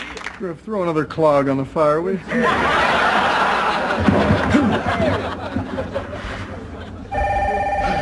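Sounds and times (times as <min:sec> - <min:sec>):
speech: 0:00.4 - 0:03.1
laughter: 0:02.3 - 0:07.1
telephone bell ringing: 0:07.1 - 0:07.9.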